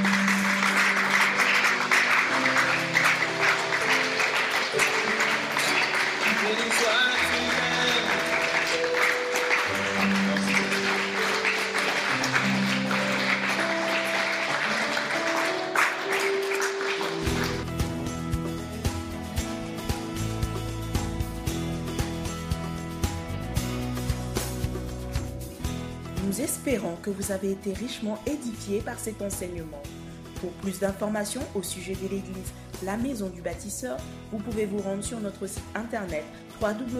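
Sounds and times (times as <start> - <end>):
church congregation applauding: 0.0 - 19.2
loud music with sustained tones and a bass line: 17.2 - 26.1
speech: 27.0 - 36.9.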